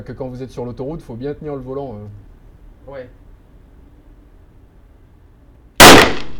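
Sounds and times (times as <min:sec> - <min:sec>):
speech: 0:00.0 - 0:03.2
gunshot fired at a shooting target: 0:05.8 - 0:06.3.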